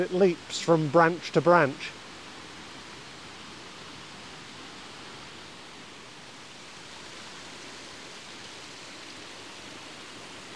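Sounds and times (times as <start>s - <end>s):
speech: 0.0s - 2.0s
cascading waterfall rushing: 0.0s - 10.5s.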